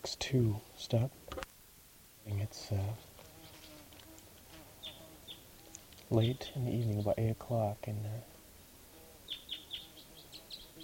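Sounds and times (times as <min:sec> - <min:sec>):
speech: 0:00.1 - 0:01.3, 0:02.3 - 0:03.1, 0:06.1 - 0:08.3
decoy birds calling: 0:02.6 - 0:07.7, 0:08.3 - 0:10.8
faint bird calls in the evening: 0:03.3 - 0:07.3, 0:08.8 - 0:10.8.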